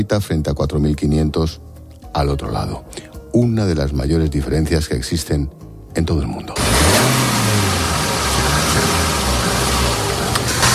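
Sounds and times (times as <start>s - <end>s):
speech: 0.0s - 7.2s
car engine accelerating: 6.6s - 10.7s.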